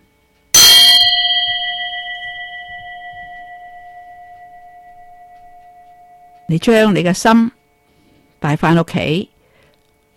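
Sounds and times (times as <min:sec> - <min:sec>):
single bell struck in a meditation listening exercise: 0:00.6 - 0:07.4
speech: 0:06.5 - 0:07.6, 0:08.4 - 0:09.3.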